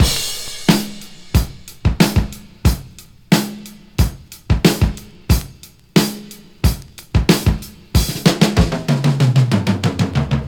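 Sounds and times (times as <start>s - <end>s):
drum beat: 0.0s - 10.4s.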